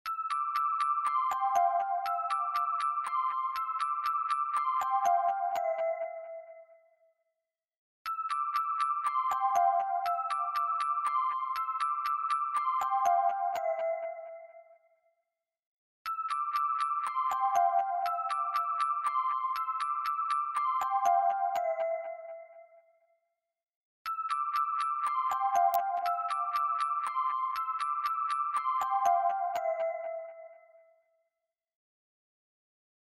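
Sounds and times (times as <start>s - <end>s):
music box melody: 0.1s - 6.4s, 8.1s - 14.5s, 16.1s - 22.5s, 24.1s - 30.8s.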